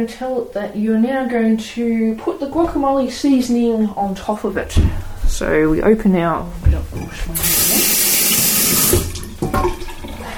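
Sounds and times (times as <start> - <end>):
speech: 0.0 - 7.7, 8.7 - 9.8
water gushing from a kitchen tap while washing hands: 7.4 - 10.3.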